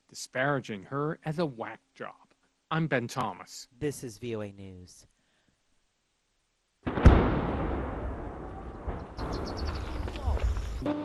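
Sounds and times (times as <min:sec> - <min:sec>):
speech: 0:00.1 - 0:05.1
heavy explosion: 0:06.8 - 0:10.7
low blasts: 0:06.8 - 0:11.0
long thundering rumble: 0:06.9 - 0:10.8.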